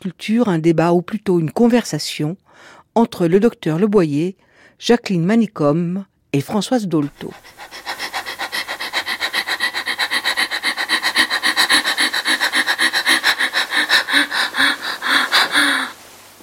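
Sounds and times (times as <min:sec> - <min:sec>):
speech: 0:00.0 - 0:07.9
woman in labor panting just before giving birth: 0:07.0 - 0:16.1.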